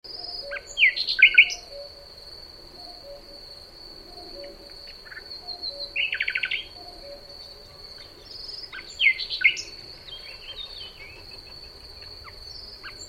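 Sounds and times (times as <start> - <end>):
constant high insect hum: 0.1 - 13.0
Common nightingale Luscinia megarhynchos singing whistled notes and stuttering trill: 0.2 - 2.0, 5.1 - 13.0.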